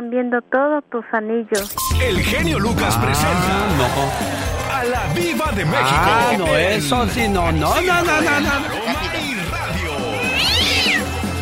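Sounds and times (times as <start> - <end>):
speech: 0.1 - 8.8
laughter: 2.1 - 11.4
cat meowing: 10.2 - 11.1.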